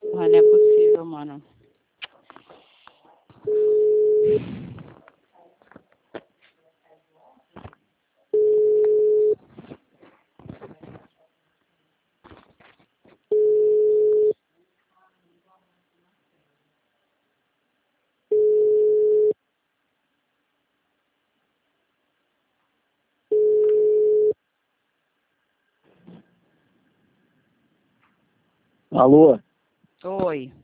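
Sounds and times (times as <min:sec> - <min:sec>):
telephone tone pulses after a dropped call: 0:00.0 - 0:01.0, 0:03.5 - 0:04.4, 0:08.4 - 0:09.4, 0:13.3 - 0:14.4, 0:18.3 - 0:19.4, 0:23.3 - 0:24.4
speech: 0:00.2 - 0:00.6, 0:29.0 - 0:29.4.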